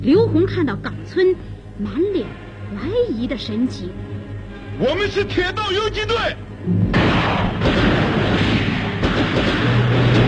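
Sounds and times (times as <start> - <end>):
speech: 0.0 - 4.1, 4.8 - 7.9
heavy booms: 6.7 - 10.2
light machine gun fire from guerrillas wading in water: 6.9 - 10.2.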